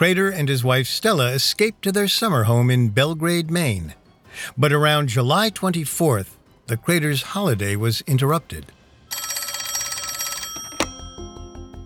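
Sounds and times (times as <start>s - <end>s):
speech: 0.0s - 8.8s
telephone bell ringing at a summer home in Belgrade Maine: 9.1s - 11.8s
phone receiver click as the phone is answered: 10.6s - 11.0s.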